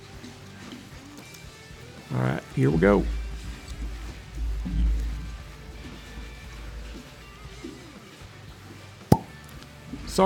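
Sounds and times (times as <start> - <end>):
speech: 2.1 - 3.2
low rumbling: 2.7 - 7.6
faint handling noise of a liqueur bottle being opened: 9.1 - 9.3
cork popping out of a liqueur bottle: 9.1 - 9.4.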